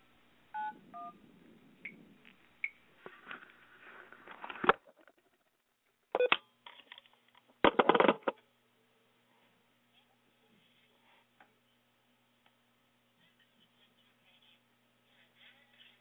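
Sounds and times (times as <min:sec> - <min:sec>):
touch-tone dialing beeps on a second telephone line: 0:00.6 - 0:01.2
telephone handling clicks and rustling: 0:06.2 - 0:08.4.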